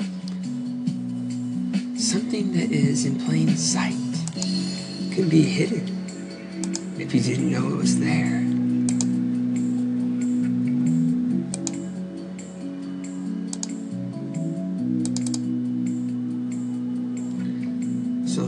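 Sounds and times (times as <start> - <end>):
steady low electronic hum: 0.0 - 18.4
speech: 2.0 - 4.6, 5.2 - 6.0, 7.1 - 8.5
keyboard clicks: 4.2 - 4.6, 6.6 - 6.9, 8.9 - 9.2, 11.5 - 11.9, 13.5 - 13.8, 15.0 - 15.5
mouse clicks: 6.6 - 6.9, 8.9 - 9.2, 11.5 - 11.9, 13.5 - 13.8, 15.0 - 15.5.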